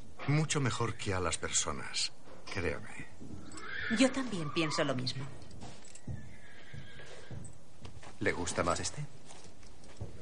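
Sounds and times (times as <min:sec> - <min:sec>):
speech: 0:00.3 - 0:05.4, 0:08.2 - 0:09.2
soft horse hoof clops: 0:02.2 - 0:04.3, 0:04.9 - 0:10.1
horse whinnying: 0:03.4 - 0:05.4, 0:06.0 - 0:07.5.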